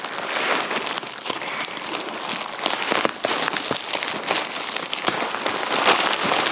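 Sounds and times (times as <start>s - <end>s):
bubble wrap being handled, crinkling and snapping: 0.0s - 6.5s.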